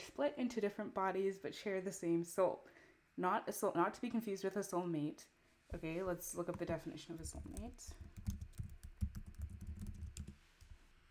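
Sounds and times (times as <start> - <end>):
speech: 0.2 - 8.4
rapid typing on a computer keyboard: 6.6 - 10.8.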